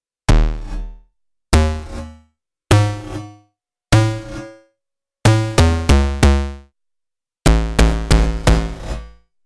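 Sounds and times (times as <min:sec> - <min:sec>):
early bass: 0:00.3 - 0:03.2, 0:03.9 - 0:04.5, 0:05.2 - 0:06.7, 0:07.4 - 0:09.2.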